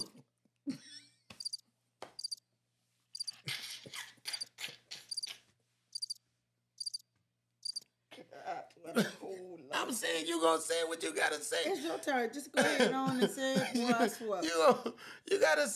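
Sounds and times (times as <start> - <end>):
cricket chirping sound effect: 1.4 - 1.6, 2.2 - 2.4, 3.2 - 3.4, 5.1 - 5.3, 5.9 - 6.2, 6.8 - 7.0
speech: 9.9 - 15.7
laughter: 11.7 - 15.0.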